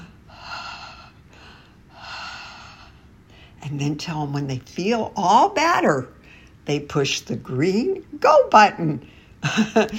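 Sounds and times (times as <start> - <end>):
deep breaths taken as a calming exercise: 0.0 - 3.6
speech: 3.6 - 9.9.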